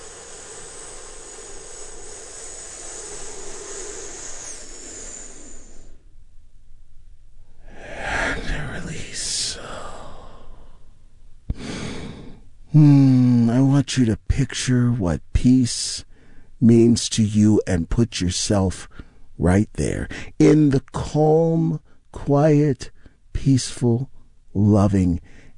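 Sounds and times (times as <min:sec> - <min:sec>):
breathy sounds: 0:00.0 - 0:06.1, 0:07.6 - 0:13.4
long deep inhale in a guided calming breathing exercise: 0:00.0 - 0:06.2, 0:07.4 - 0:13.4, 0:16.0 - 0:16.6, 0:18.9 - 0:19.4, 0:20.1 - 0:20.4, 0:25.2 - 0:25.5
speech: 0:12.7 - 0:13.1, 0:13.9 - 0:25.4.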